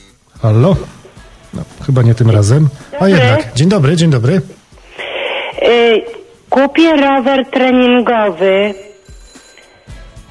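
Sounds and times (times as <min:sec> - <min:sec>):
speech: 0:00.4 - 0:04.6, 0:05.7 - 0:08.9
telephone ringing: 0:06.7 - 0:10.1.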